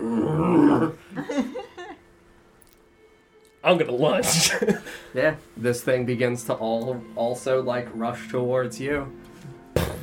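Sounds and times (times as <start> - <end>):
person growling like an animal: 0.0 - 1.0
laughter: 1.1 - 2.0, 4.2 - 5.1
speech: 3.7 - 9.3.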